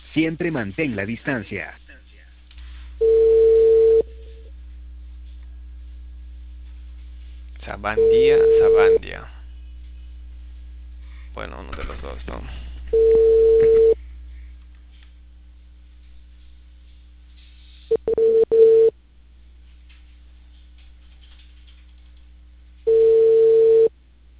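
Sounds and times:
quiet low hum: 0.0 - 24.3
speech: 0.2 - 1.8, 7.7 - 9.4, 11.4 - 13.4
telephone ringback tone before transfer to voicemail: 3.0 - 4.1, 8.0 - 9.0, 12.9 - 14.0, 17.9 - 18.9, 22.9 - 23.9.

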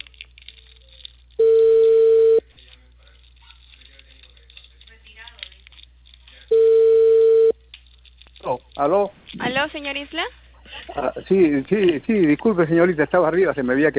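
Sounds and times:
outgoing phone call ringback tone on a line: 1.4 - 2.4, 6.5 - 7.6
speech: 8.8 - 13.9.

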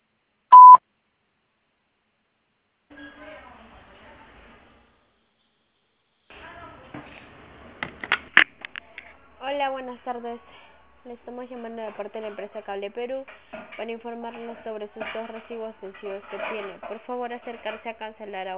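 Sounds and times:
voicemail system beep before recording: 0.5 - 0.8
speech: 9.5 - 18.5.

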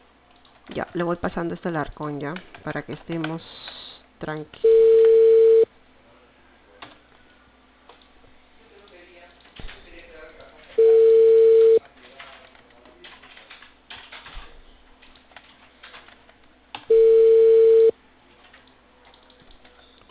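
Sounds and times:
speech: 0.7 - 5.0
unanswered telephone call ringback tones: 4.6 - 5.7, 10.8 - 11.8, 16.9 - 17.9.

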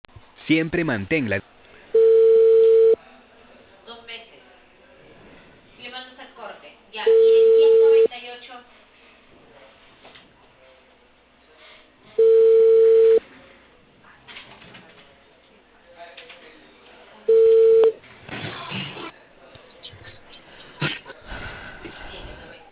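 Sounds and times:
speech: 0.5 - 1.6
telephone ringback tone on an outgoing call: 2.0 - 3.0, 7.1 - 8.1, 12.2 - 13.2, 17.3 - 18.0.

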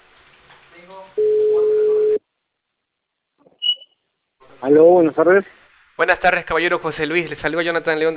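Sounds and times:
speech: 0.8 - 1.4, 4.6 - 8.1
faint high beep: 1.2 - 2.2, 3.6 - 4.0
phone ringback tone from a call to a mobile phone: 1.2 - 2.2.

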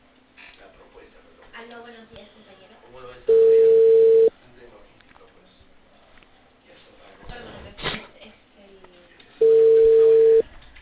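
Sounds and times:
telephone ringback tone on an unanswered call: 3.3 - 4.3, 9.4 - 10.4.

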